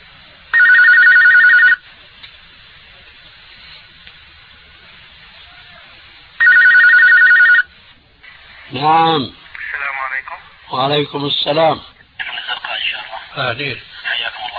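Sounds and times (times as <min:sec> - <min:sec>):
quiet hiss: 0:00.0 - 0:14.5
telephone ringing with electronic trill for a call-in question: 0:00.5 - 0:01.8, 0:06.4 - 0:07.7
speech: 0:08.7 - 0:09.4, 0:10.7 - 0:11.9, 0:13.4 - 0:13.9.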